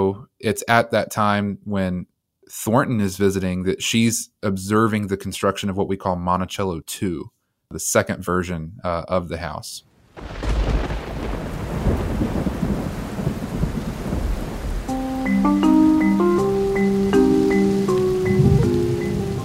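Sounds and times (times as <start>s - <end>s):
speech: 0.0s - 10.8s
heavy rain pouring outside at Monticello: 10.0s - 19.4s
deep rumbles of thunder: 10.1s - 15.9s, 16.9s - 19.4s
gentle melodic notes: 14.9s - 19.4s.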